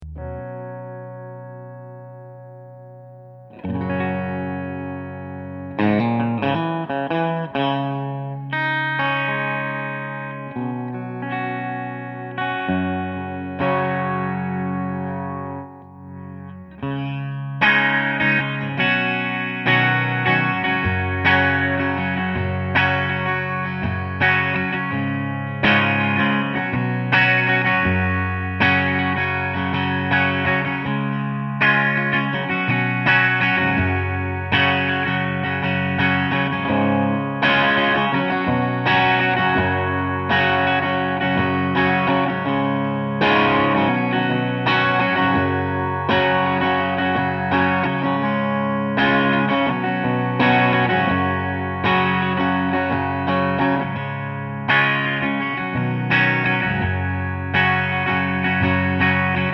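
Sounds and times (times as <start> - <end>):
electric guitar with noiseless pickups playing chords: 0.0 - 59.5.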